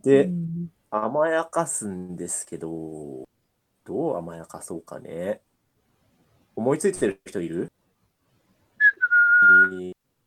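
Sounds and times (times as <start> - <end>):
speech: 0.0 - 3.3, 3.9 - 5.5, 6.6 - 7.8, 9.4 - 10.0
person whistling one steady note: 8.8 - 9.9.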